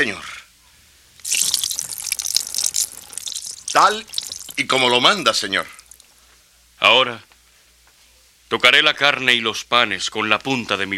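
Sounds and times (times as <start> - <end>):
broth poured onto a rock in a hissing stream: 1.2 - 6.1
speech: 3.8 - 5.8, 6.8 - 7.3, 8.5 - 10.9.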